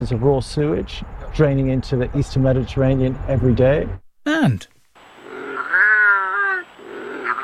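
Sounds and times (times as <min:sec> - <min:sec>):
speech: 0:00.1 - 0:04.7
British native wildcat yowling: 0:05.3 - 0:07.4.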